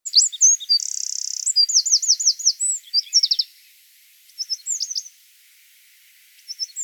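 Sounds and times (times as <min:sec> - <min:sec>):
Eurasian wren Troglodytes troglodytes song: 0:00.1 - 0:03.7, 0:04.3 - 0:05.2, 0:06.3 - 0:06.8.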